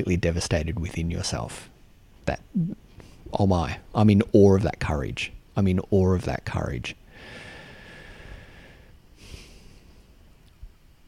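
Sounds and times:
speech: 0:00.0 - 0:01.7, 0:02.3 - 0:07.4
person breathing in deeply: 0:07.1 - 0:10.0.

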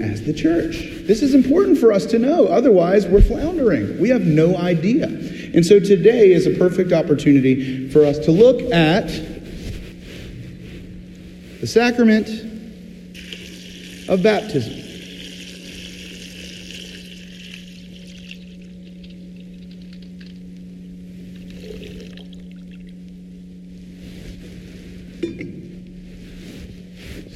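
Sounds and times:
speech: 0:00.0 - 0:09.3, 0:11.6 - 0:12.5, 0:14.1 - 0:14.8
constant low hum: 0:00.0 - 0:27.3
water pouring in a steady trickle: 0:13.1 - 0:20.4, 0:21.3 - 0:23.0.

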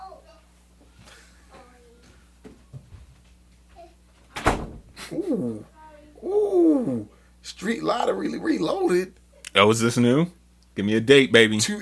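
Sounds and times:
door banging shut: 0:04.3 - 0:05.0
speech: 0:05.3 - 0:05.7, 0:06.8 - 0:11.8.

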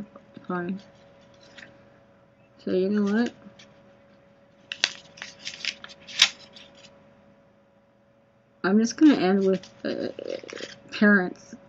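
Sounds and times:
faint steady hum: 0:00.0 - 0:11.6
speech: 0:00.5 - 0:01.0, 0:02.6 - 0:03.4, 0:08.6 - 0:11.6
paper rustling and crinkling: 0:00.8 - 0:01.7, 0:04.6 - 0:06.9, 0:09.2 - 0:10.9.

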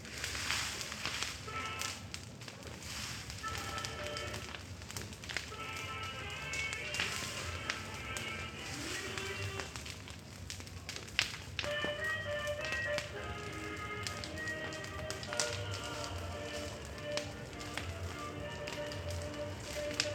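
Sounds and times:
field fire burning wasteland for corn planting, crackling and popping: 0:00.0 - 0:20.1
radio in a house playing reggae and ranchera music and voices: 0:06.1 - 0:09.9, 0:12.0 - 0:20.1.

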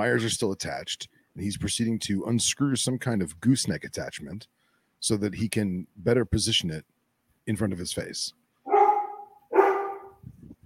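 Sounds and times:
speech: 0:00.0 - 0:08.4
dog barking: 0:08.7 - 0:10.2.

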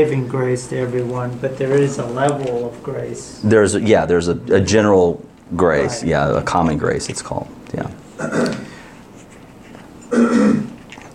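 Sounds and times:
speech: 0:00.0 - 0:08.6
throat clearing during a church service: 0:08.2 - 0:08.8, 0:10.0 - 0:10.8.

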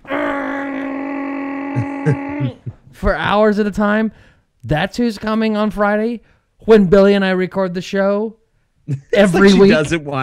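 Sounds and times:
voice imitating a vent cleaners' vacuum truck drone: 0:00.0 - 0:02.8
speech: 0:02.0 - 0:10.2.

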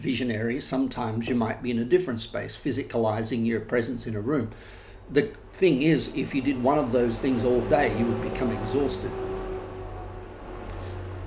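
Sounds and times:
speech: 0:00.0 - 0:09.3
heavy truck engine droning: 0:04.6 - 0:11.2.

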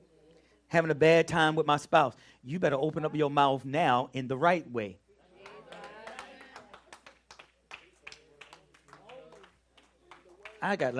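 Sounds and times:
man speaking loudly: 0:00.7 - 0:05.0, 0:10.6 - 0:10.9
speech: 0:00.7 - 0:05.0, 0:10.6 - 0:10.9
scattered claps from audience: 0:05.4 - 0:10.9.

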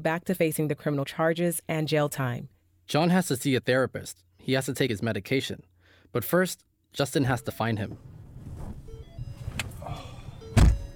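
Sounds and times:
speech: 0:00.0 - 0:08.2
soft rustling of someone getting into a hybrid car: 0:07.9 - 0:09.8
heavy door thunk of a white hybrid car: 0:07.9 - 0:10.9.

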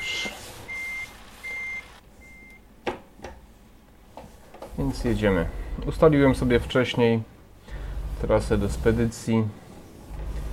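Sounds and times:
backing truck reversing beeps: 0:00.0 - 0:02.6
low hum: 0:00.0 - 0:10.5
speech: 0:04.8 - 0:07.3, 0:08.2 - 0:09.6.

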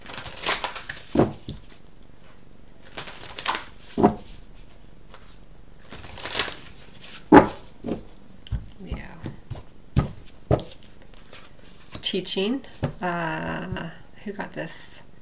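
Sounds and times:
tarot cards being riffle shuffled: 0:00.0 - 0:01.9, 0:02.8 - 0:12.1
taps and slaps of a tarot deck being handled and squared: 0:00.4 - 0:01.8, 0:02.9 - 0:04.3, 0:07.1 - 0:12.0
speech: 0:12.1 - 0:15.0.

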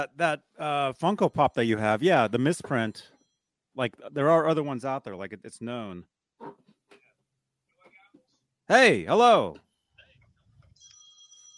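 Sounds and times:
speech: 0:00.0 - 0:03.1, 0:03.8 - 0:06.6, 0:08.7 - 0:09.6
telephone ringing with electronic trilling tone: 0:10.8 - 0:11.5.

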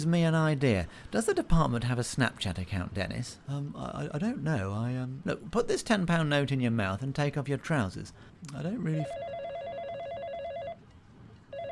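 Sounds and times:
speech: 0:00.0 - 0:09.4
telephone ringing with electronic trill: 0:09.0 - 0:10.8, 0:11.5 - 0:11.7.

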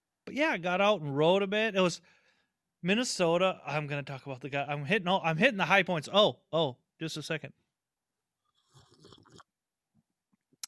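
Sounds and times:
speech: 0:00.4 - 0:02.2, 0:02.8 - 0:07.6
slurping sip of coffee: 0:08.4 - 0:09.5.

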